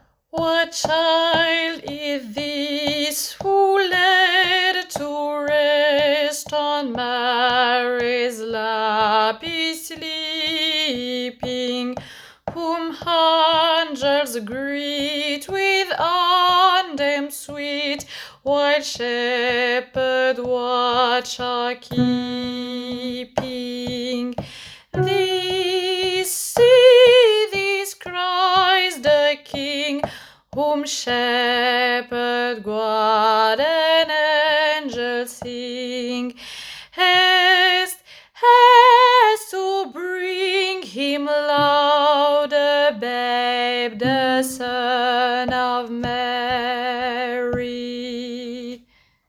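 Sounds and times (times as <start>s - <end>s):
alto voice singing: 0.4s - 36.3s, 37.0s - 48.8s.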